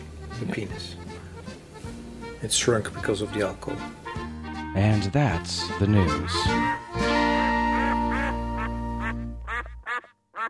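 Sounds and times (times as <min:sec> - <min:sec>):
speech: 0:00.4 - 0:01.1, 0:02.4 - 0:04.0, 0:04.7 - 0:07.2
sustained musical chord: 0:02.4 - 0:09.8
duck quacking: 0:05.8 - 0:06.8, 0:07.6 - 0:10.4.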